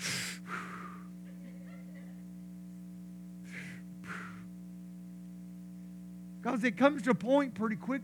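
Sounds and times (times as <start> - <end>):
person demonstrating side-of-mouth breathing: 0.0 - 1.1, 3.5 - 4.5
steady low electrical hum: 0.0 - 8.0
laughter: 1.3 - 2.2
speech: 6.4 - 8.0.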